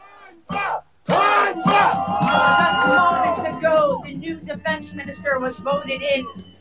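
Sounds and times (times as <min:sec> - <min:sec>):
protest crowd shouting a two-beat chant in unison: 0:00.0 - 0:04.2
speech: 0:04.2 - 0:06.5.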